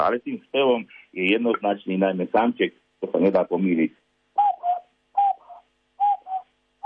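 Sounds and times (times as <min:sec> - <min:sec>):
speech: 0:00.0 - 0:04.0
cuckoo call imitated by blowing into cupped hands: 0:04.4 - 0:06.8.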